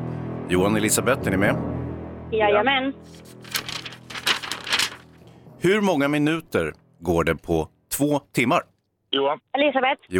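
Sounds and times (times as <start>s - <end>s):
speech: 0.5s - 3.5s, 5.6s - 10.1s
paper rustling as pages shift: 3.0s - 5.2s
envelope being torn open: 3.1s - 5.2s.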